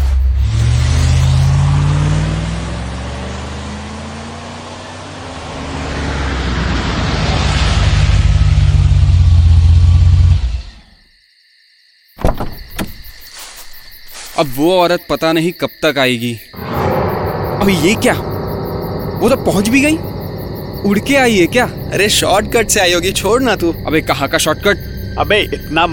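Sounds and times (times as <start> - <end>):
car engine revving as the vehicle pulls away: 0.0 - 10.9, 16.6 - 25.9
speech: 14.4 - 16.8, 17.6 - 18.3, 19.2 - 20.1, 20.8 - 25.9.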